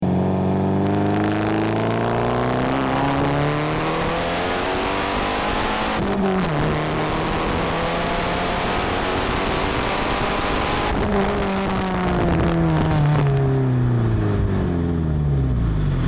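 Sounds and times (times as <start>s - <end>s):
Porsche 944 Turbo Cup engine accelerating: 0.0s - 16.0s.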